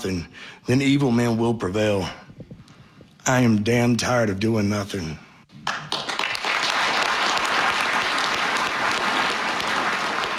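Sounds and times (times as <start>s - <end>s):
speech: 0.0s - 2.2s, 3.2s - 5.2s
large audience applause: 5.6s - 10.3s.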